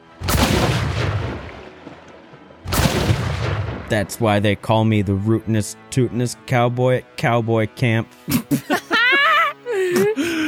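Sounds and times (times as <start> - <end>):
explosion sound effect: 0.2 - 1.6, 2.7 - 4.0
speech: 3.9 - 8.8
laughter: 8.2 - 10.4.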